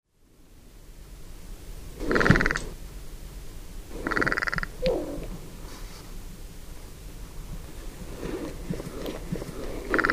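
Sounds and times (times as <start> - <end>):
low background hum: 0.1 - 10.1
carrion crow Corvus corone giving rasping calls: 2.0 - 2.7, 3.9 - 5.2, 8.9 - 10.1.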